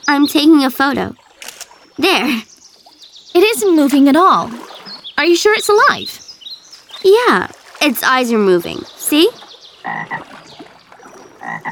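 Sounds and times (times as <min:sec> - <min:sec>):
speech: 0:00.1 - 0:01.2, 0:02.0 - 0:02.5, 0:03.4 - 0:04.6, 0:05.2 - 0:06.2, 0:07.0 - 0:10.3
frog croaking: 0:09.8 - 0:10.4, 0:11.1 - 0:11.7.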